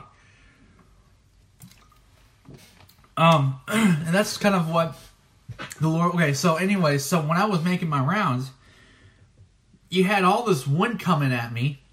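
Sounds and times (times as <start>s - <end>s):
person sipping water: 0.7s - 3.2s
soft wet gulps: 0.7s - 4.1s, 5.0s - 5.9s
speech: 2.6s - 5.0s, 5.8s - 8.6s, 9.9s - 11.8s.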